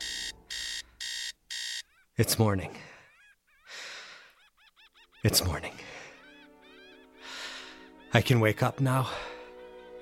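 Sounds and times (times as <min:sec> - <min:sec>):
alarm clock ringing: 0:00.0 - 0:01.9
speech: 0:02.2 - 0:02.9, 0:05.2 - 0:05.8, 0:08.2 - 0:09.3.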